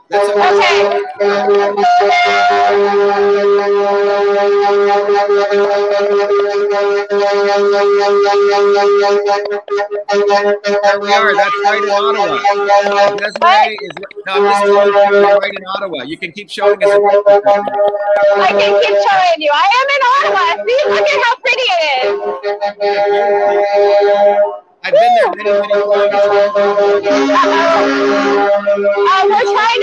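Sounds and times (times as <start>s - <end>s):
many vehicle horns honking: 0.0s - 8.5s, 10.1s - 29.8s
laughter: 0.1s - 1.9s, 10.9s - 19.4s, 24.9s - 28.0s
speech: 0.1s - 2.8s, 7.4s - 29.8s.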